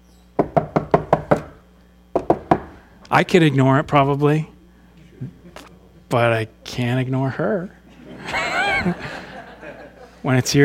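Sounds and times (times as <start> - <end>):
knocking on a door: 0.4 - 2.8
speech: 3.1 - 4.5, 6.1 - 7.8, 8.8 - 9.2, 10.2 - 10.6
laughter: 7.8 - 10.2.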